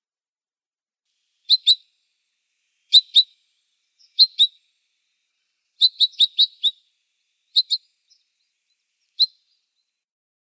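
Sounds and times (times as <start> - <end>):
long-tailed rosefinch high clipped chirps: 1.5 - 1.9, 2.9 - 3.4, 4.0 - 4.7, 5.8 - 6.9, 7.6 - 9.6.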